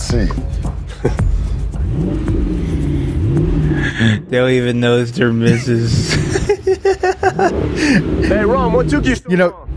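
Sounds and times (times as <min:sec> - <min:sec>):
speech: 0:00.1 - 0:02.4, 0:04.0 - 0:06.2, 0:06.8 - 0:09.7
hot rod police car engine revving: 0:00.4 - 0:09.7
laughter: 0:00.9 - 0:01.5, 0:05.3 - 0:08.6.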